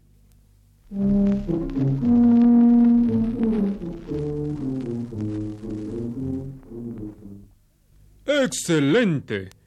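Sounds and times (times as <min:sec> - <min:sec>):
tuba playing a slow low melody: 0:00.9 - 0:07.6
speech: 0:08.5 - 0:09.6.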